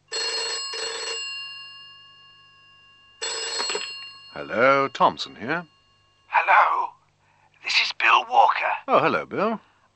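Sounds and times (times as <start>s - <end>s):
office telephone ringing: 0.0s - 6.8s
speech: 4.4s - 5.8s, 8.9s - 9.7s.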